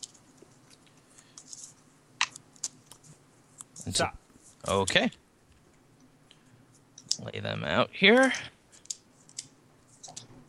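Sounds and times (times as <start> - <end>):
deck of playing cards being shuffled: 0.0 - 4.9, 8.2 - 10.4
speech: 3.9 - 5.2, 7.2 - 8.6.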